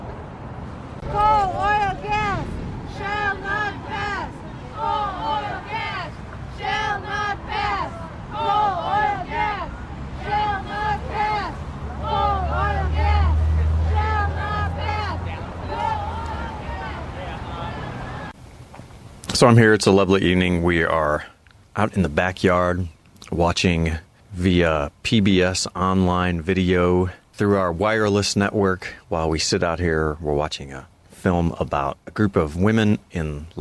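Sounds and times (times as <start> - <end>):
low engine rumble from Coast Guard patrol boat and police boats on water: 0.0 - 19.6
light wind: 0.0 - 33.5
speech: 1.0 - 1.6, 19.4 - 33.5
steady outdoor crowd chatter: 1.0 - 18.4.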